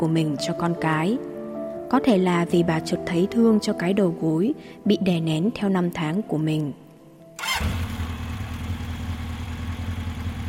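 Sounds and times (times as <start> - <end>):
speech: 0.0 - 1.3, 1.9 - 6.8, 7.6 - 7.8
motorbike engine started by a man: 7.4 - 10.4.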